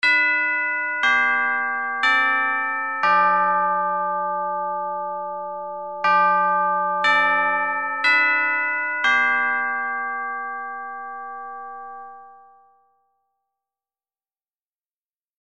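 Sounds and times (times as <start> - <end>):
chime: 0.0 - 13.4.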